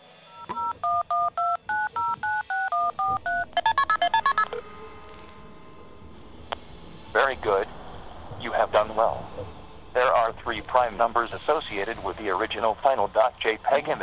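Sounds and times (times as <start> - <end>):
telephone number being dialed with touch-tone beeps: 0.4 - 4.6
short bright rising telephone tones: 1.8 - 14.0
faint hum of telephone line noise: 2.9 - 14.0
speech: 10.8 - 14.0.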